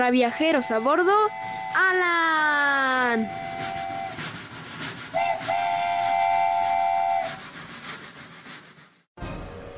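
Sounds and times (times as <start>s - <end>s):
speech: 0.0s - 3.5s
steam whistle of a moving train: 0.6s - 4.3s, 5.1s - 7.5s
running train rumbling and rattling: 1.2s - 8.0s.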